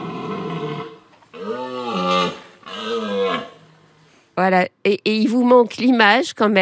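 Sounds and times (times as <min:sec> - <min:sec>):
red deer stag bellowing during the rut: 0:00.0 - 0:03.8
speech: 0:04.4 - 0:06.6.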